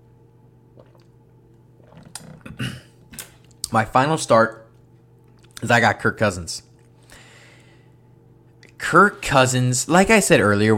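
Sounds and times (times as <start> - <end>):
gulp of water: 0.7 - 1.2, 1.8 - 3.0
person sipping water: 0.7 - 3.7
speech: 3.7 - 4.6, 5.6 - 6.7, 8.9 - 10.7.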